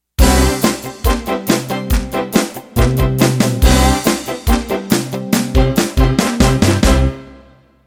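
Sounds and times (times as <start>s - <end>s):
country boogie music ending: 0.2s - 7.5s.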